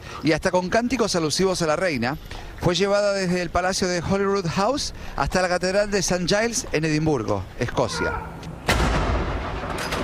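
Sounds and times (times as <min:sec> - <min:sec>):
steady outdoor ambience: 0:00.0 - 0:10.0
speech: 0:00.2 - 0:08.4
ceremonial cannon salute boom: 0:08.6 - 0:10.0
long rumbling echo of cannon boom: 0:08.6 - 0:10.0.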